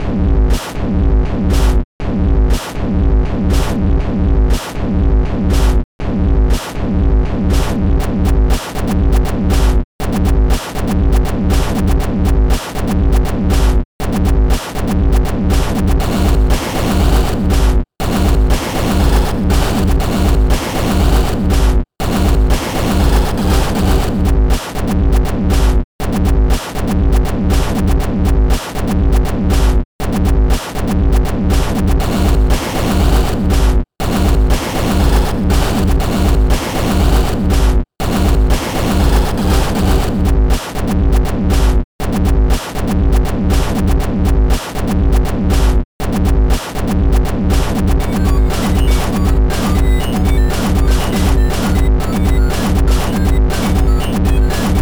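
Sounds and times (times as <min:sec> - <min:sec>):
industrial new beat music: 0:00.4 - 0:01.8, 0:02.4 - 0:02.8, 0:03.4 - 0:05.8, 0:06.4 - 0:54.7.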